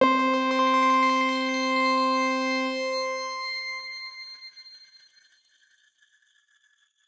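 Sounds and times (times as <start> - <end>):
grain C5 note fortissimo: 0.0 - 3.2.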